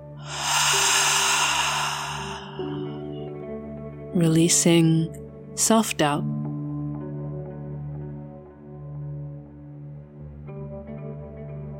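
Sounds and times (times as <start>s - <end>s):
deep breath in through the nose and out through the mouth: 0.0s - 3.3s
soft steady musical tones: 0.0s - 6.2s
speech: 4.2s - 6.4s.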